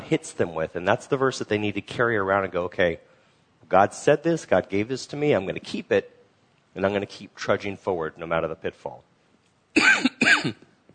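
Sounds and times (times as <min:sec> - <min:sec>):
speech: 0:00.1 - 0:03.1, 0:03.7 - 0:06.2, 0:06.8 - 0:09.1, 0:09.8 - 0:10.7
person coughing harshly: 0:09.8 - 0:10.7.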